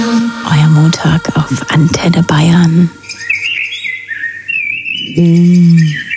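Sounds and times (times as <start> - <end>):
loud steady low tone: 0.0 - 3.2
speech: 1.0 - 3.0, 5.2 - 5.5
blackbird singing: 1.1 - 6.1.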